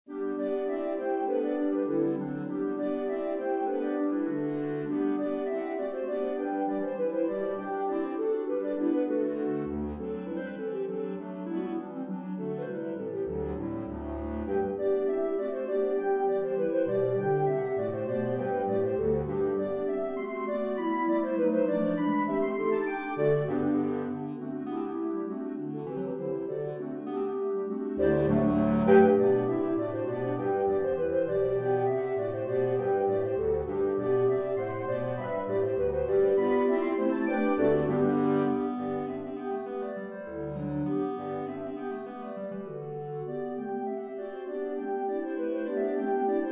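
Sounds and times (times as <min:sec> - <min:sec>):
clarinet ensemble playing: 0:00.1 - 0:46.5.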